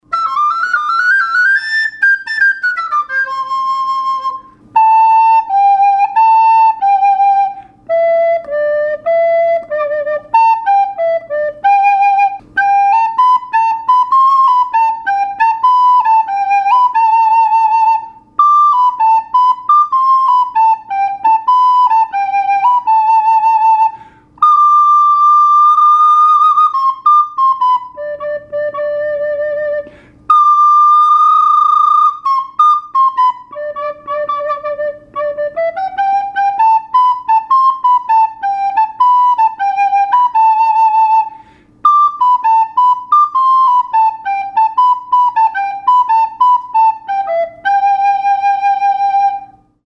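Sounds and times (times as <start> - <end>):
recorder playing: 0.0 - 49.8.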